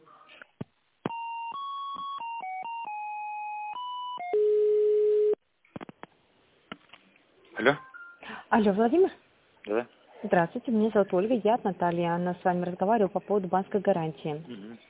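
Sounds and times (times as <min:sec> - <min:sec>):
electronic telephone line tones during a call transfer: 0:01.1 - 0:05.4, 0:07.8 - 0:08.2
speech: 0:07.6 - 0:07.8, 0:08.5 - 0:14.8.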